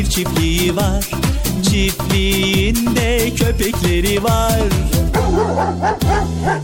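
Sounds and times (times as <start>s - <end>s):
speech: 0.1s - 1.2s, 1.8s - 6.6s
dog barking on a farm: 5.1s - 6.6s.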